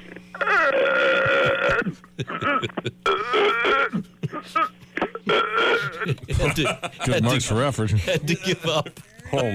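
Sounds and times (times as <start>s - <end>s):
person straining to burp with croaking belch-like sound: 0.3s - 4.0s, 4.6s - 6.2s
person gagging and retching: 0.3s - 6.2s
laughter: 1.1s - 3.3s, 5.7s - 9.5s
speech: 6.5s - 9.5s.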